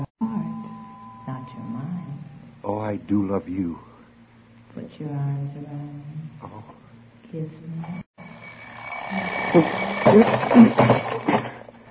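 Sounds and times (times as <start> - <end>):
faint hum: 0.0 - 11.8
speech: 2.7 - 3.9, 4.8 - 8.0, 9.1 - 11.4
alarm clock ringing with a metallic clatter: 8.2 - 11.7.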